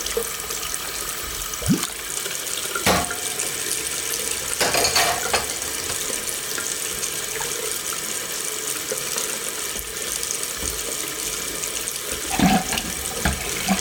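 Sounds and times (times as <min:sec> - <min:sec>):
water running from a tap: 0:00.0 - 0:13.8
dishes clinking and knocking while being washed: 0:02.8 - 0:03.6, 0:04.5 - 0:06.3.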